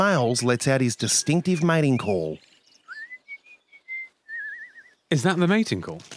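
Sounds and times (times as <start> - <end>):
speech: 0.0 - 2.5, 5.1 - 6.1
person whistling a short melodic tune: 2.9 - 4.9.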